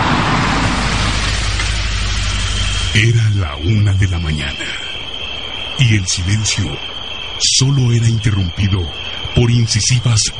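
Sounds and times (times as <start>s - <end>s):
car engine and road noise on a highway: 0.0s - 3.0s
speech: 2.9s - 4.8s, 5.8s - 10.3s.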